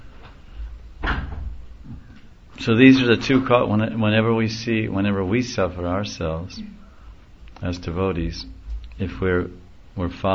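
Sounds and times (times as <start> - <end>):
low hum: 0.0 - 10.3
door being pushed shut and latched with a rattle: 1.0 - 2.0
speech: 2.6 - 6.8, 7.6 - 10.3.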